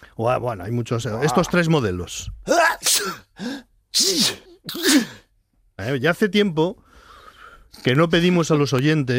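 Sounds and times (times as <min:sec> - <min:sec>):
speech: 0:00.2 - 0:05.2, 0:05.8 - 0:06.8, 0:07.7 - 0:09.1
person sneezing: 0:02.5 - 0:05.3.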